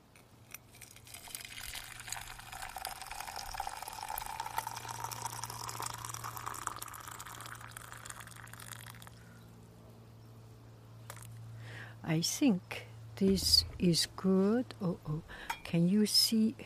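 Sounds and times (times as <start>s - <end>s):
low constant hum: 0.0s - 16.6s
water poured into a cup for tea: 0.7s - 9.2s
speech: 12.1s - 16.6s.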